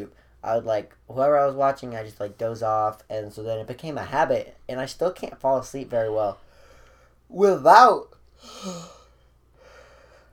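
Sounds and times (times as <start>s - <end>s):
speech: 0.0s - 6.4s, 7.3s - 9.0s
big yawn: 8.4s - 9.2s.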